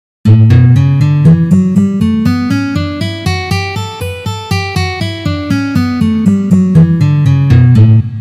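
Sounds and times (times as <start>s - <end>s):
B minor scale in position: 0.4s - 8.0s.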